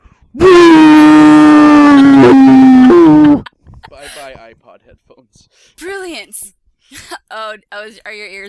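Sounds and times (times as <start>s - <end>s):
person vocally imitating a creature's roar: 0.4s - 3.5s
speech: 7.5s - 8.4s.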